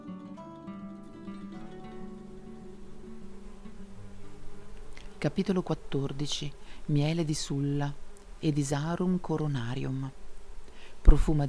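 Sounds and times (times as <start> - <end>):
bees buzzing: 1.0 - 8.5
speech: 5.2 - 10.2, 11.0 - 11.4.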